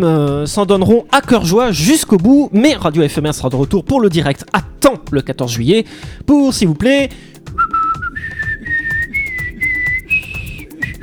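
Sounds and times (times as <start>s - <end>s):
speech: 0.0s - 8.0s
person whistling a melody loudly: 7.4s - 11.0s.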